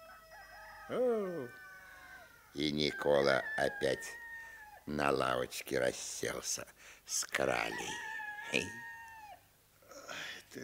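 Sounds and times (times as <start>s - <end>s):
rooster crowing: 0.0s - 4.9s, 7.5s - 9.5s
speech: 0.9s - 1.6s, 2.5s - 4.2s, 4.9s - 8.9s.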